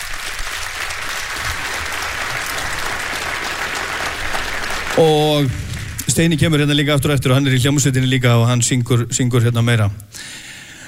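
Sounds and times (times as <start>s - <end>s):
concert audience applauding a singer: 0.0s - 7.6s
speech: 5.0s - 10.5s.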